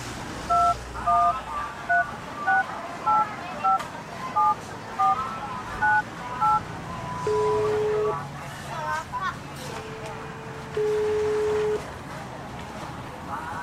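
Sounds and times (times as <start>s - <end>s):
mobile phone keypad dialing tones: 0.5s - 3.8s, 4.4s - 6.6s, 7.2s - 8.2s, 10.8s - 11.8s.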